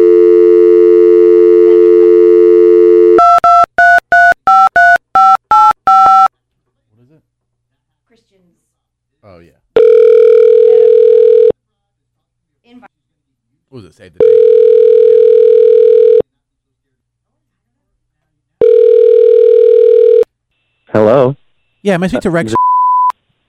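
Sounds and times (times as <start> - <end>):
telephone dial tone: 0.0 - 6.3, 9.8 - 11.5, 14.2 - 16.2, 18.6 - 20.2
telephone keypad beeps: 3.2 - 6.3
speech: 21.9 - 22.6.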